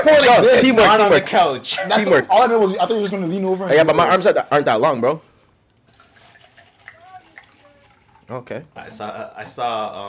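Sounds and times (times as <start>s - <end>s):
speech: 0.0s - 5.3s, 8.3s - 10.0s
wine pouring from a bottle into a glass: 5.8s - 9.0s.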